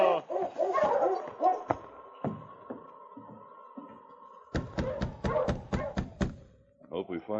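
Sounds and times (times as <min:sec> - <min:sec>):
dog barking excitedly on a hard-packed trail: 0:00.2 - 0:01.8, 0:04.7 - 0:06.2
speech: 0:07.2 - 0:07.3.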